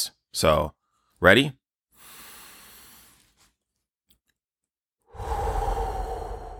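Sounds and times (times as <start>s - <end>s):
speech: 0.4s - 1.6s
deep slow breaths: 1.9s - 3.4s, 5.1s - 6.5s.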